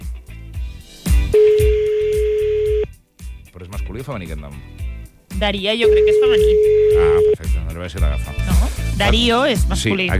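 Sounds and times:
loud steady held telephone tone: 1.3s - 2.9s, 5.8s - 7.4s
telephone dialing tones of an outgoing call: 1.4s - 2.9s
speech: 4.0s - 4.8s, 5.4s - 10.1s.

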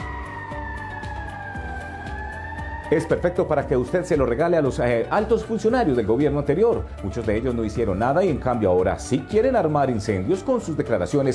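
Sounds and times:
fire truck siren wailing: 0.0s - 5.8s
speech: 2.9s - 11.3s.

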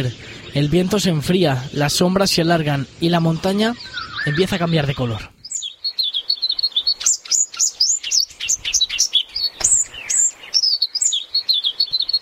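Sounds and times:
speech: 0.0s - 5.4s
single bird chirping on a mountain: 0.0s - 12.2s.

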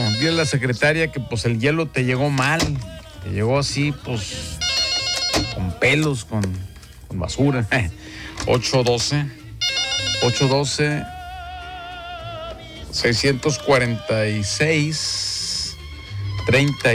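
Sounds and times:
telephone ringing on an outgoing call: 0.0s - 0.8s, 4.4s - 6.2s, 9.6s - 11.1s
speech: 0.2s - 4.7s, 5.4s - 9.4s, 10.2s - 11.2s, 12.9s - 15.2s, 16.5s - 16.9s.

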